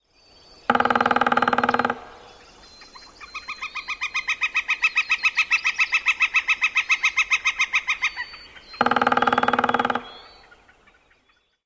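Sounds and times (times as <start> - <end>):
yellow-shafted Northern Flicker drumming: 0.6 - 2.5, 6.8 - 10.8
yellow-shafted Northern Flicker calling kikikiki: 0.7 - 11.6.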